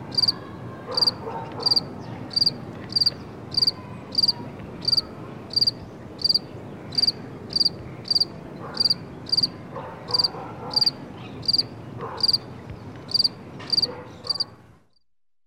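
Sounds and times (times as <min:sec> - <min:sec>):
insect chirping: 0:00.1 - 0:00.4, 0:01.0 - 0:09.5, 0:10.2 - 0:12.4, 0:13.1 - 0:14.4.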